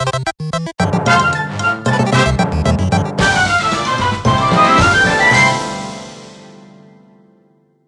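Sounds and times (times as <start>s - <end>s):
victory theme music: 0.8s - 7.0s.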